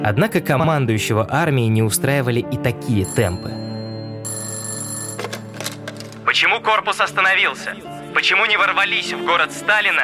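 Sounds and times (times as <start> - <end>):
speech: 0.0 - 3.7, 6.3 - 10.0
telephone bell ringing: 3.0 - 6.0.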